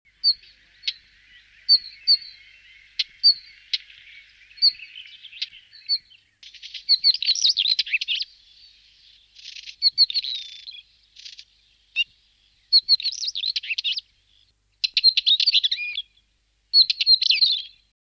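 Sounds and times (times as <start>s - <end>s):
northern wheatear singing: 0.1s - 17.9s.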